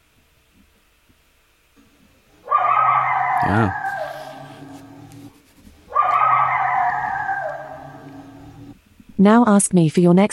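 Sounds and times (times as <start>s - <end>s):
coyote howling and yipping: 2.4s - 8.8s
speech: 3.4s - 3.8s, 9.2s - 10.3s.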